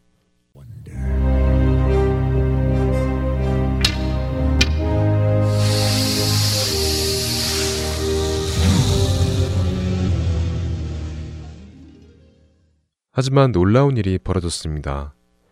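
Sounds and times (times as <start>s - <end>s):
sustained orchestral music: 0.6s - 12.6s
snakes hissing: 4.0s - 11.5s
speech: 13.2s - 15.2s.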